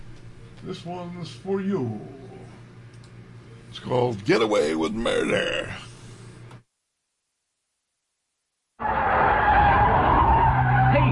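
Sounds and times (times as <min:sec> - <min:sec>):
speech: 0:00.6 - 0:02.3, 0:03.8 - 0:05.9
car engine roaring while taking a curve fast: 0:08.8 - 0:11.1
car tires skidding on a fast curve: 0:08.8 - 0:11.1.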